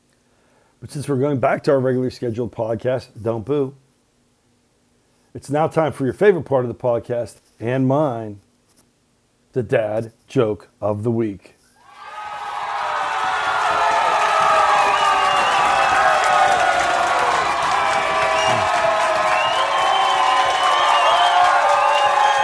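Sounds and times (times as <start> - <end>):
speech: 0.8 - 3.8, 5.3 - 8.4, 9.5 - 11.6
large crowd clapping: 12.0 - 22.4.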